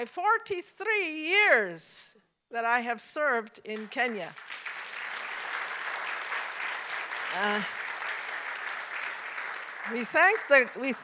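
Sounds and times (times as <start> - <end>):
speech: 0.0 - 4.7, 7.3 - 7.8, 9.9 - 11.0
sizable audience applauding: 4.0 - 11.0.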